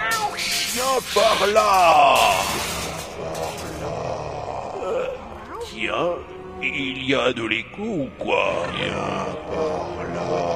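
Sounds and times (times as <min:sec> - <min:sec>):
small cat meowing: 0:00.0 - 0:00.6
speech: 0:01.0 - 0:02.7, 0:04.9 - 0:10.5.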